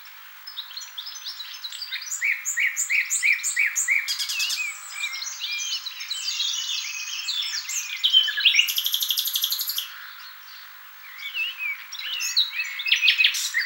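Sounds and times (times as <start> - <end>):
common nightingale song, Luscinia megarhynchos: 0.0 - 13.6.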